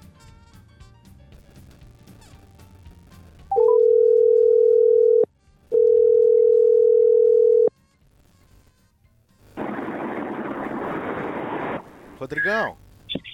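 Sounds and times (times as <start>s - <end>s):
telephone dial tone beeps while placing call: 3.5s - 7.7s
loud static-like hiss as the phone line connects: 9.4s - 13.3s
speech: 12.3s - 12.8s.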